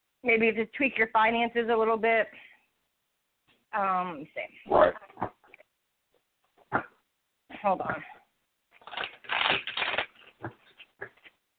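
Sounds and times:
speech: 0.2 - 2.5, 3.7 - 5.4, 6.7 - 6.9, 7.6 - 8.2
tarot cards flicking and snapping as pulled from deck: 8.8 - 10.3
tarot cards shuffling: 8.8 - 10.9.

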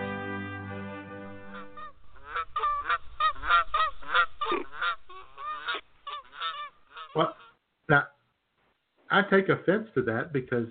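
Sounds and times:
people imitating quacking ducks with nasal honks and squawks: 1.5 - 7.6
speech: 9.2 - 10.6.

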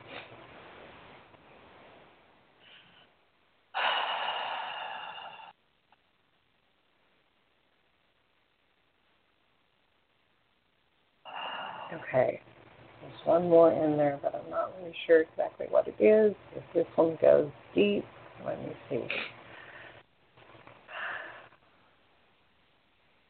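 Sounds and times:
slow deep breath in and out: 2.6 - 5.6, 11.3 - 12.1, 19.4 - 20.1, 20.9 - 22.0
speech: 11.9 - 12.5, 13.2 - 19.4.

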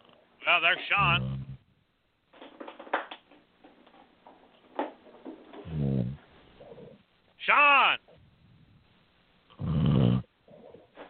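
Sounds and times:
speech: 0.5 - 1.4, 7.5 - 8.0
snoring over a phone-like line: 1.0 - 1.6, 5.6 - 7.0, 9.5 - 10.9.

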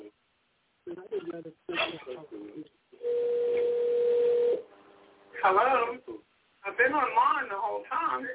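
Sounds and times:
speech: 1.0 - 3.2, 5.4 - 8.3
phone dialing tone of an outgoing call placed by voice assistant: 3.0 - 4.6.

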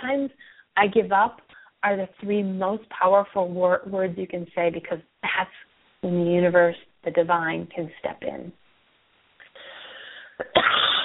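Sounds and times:
speech: 0.0 - 8.6
person coughing with a raspy breathy wheeze: 10.4 - 11.0.

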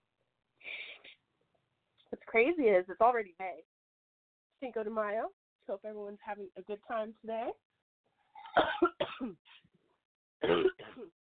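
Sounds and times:
speech: 2.3 - 3.7, 4.6 - 7.6, 8.6 - 9.7, 10.4 - 11.2
person in a harsh coughing fit: 8.4 - 9.4, 10.4 - 11.1.

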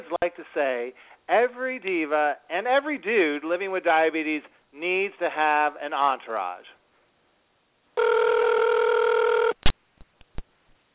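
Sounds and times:
speech: 0.0 - 6.8, 8.0 - 8.7
telephone ringing: 8.0 - 9.6.

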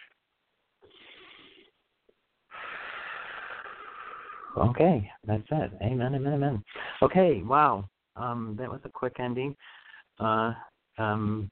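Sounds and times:
big breath drawn in through the nose: 0.8 - 1.8, 2.5 - 4.6
long rushing exhale through the mouth: 0.8 - 1.8, 2.5 - 4.6
speech: 4.6 - 11.5.

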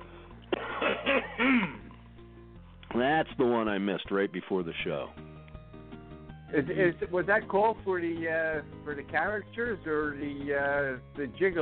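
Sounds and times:
throat clearing: 0.5 - 2.0
speech: 3.2 - 5.3, 6.5 - 11.6.

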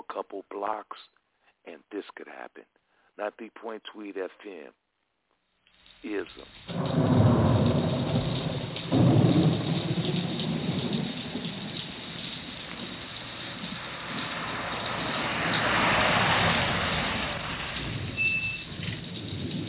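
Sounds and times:
speech: 0.2 - 4.8, 6.0 - 7.1
heavy rain pouring: 5.9 - 19.6
thunder rumbling: 6.0 - 19.6.

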